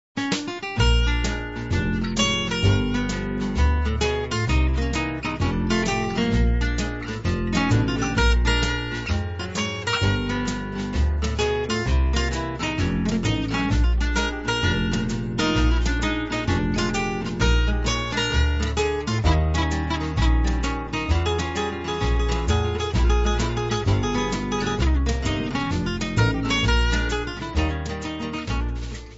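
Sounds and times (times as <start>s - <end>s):
backporch blues music: 0.2s - 29.1s.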